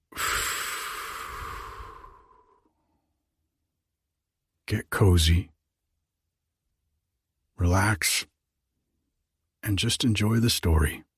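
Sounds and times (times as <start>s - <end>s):
deep breath let out in a bedtime relaxation setting: 0.0s - 2.9s
speech: 4.7s - 5.5s, 7.6s - 8.3s, 9.6s - 11.1s.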